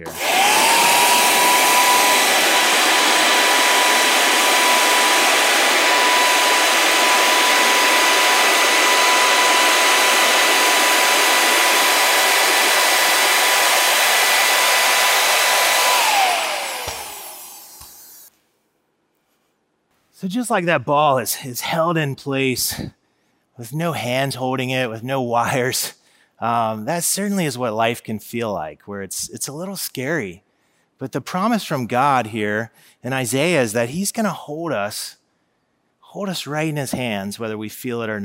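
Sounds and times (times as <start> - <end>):
leaf blower running: 0.0 - 18.3
speech: 20.3 - 23.0, 23.6 - 30.4, 31.0 - 35.2, 36.1 - 38.2.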